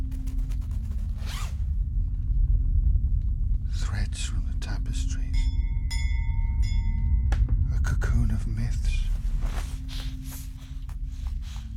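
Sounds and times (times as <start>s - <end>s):
steady low rumble and hum: 0.0s - 11.7s
zipper being zipped closed: 1.1s - 1.6s
speech: 4.1s - 5.7s, 7.9s - 10.5s.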